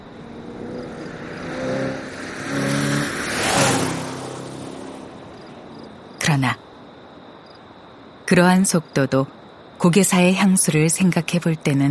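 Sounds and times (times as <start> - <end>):
racing car engine revving at full throttle along an empty street: 0.2 - 5.5
speech: 6.4 - 6.6, 8.3 - 11.8.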